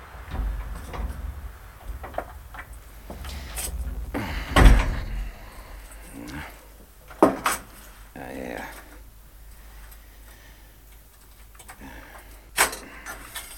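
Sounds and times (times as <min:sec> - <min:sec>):
phone booth door rattling, knocking and scraping: 0:00.0 - 0:08.2.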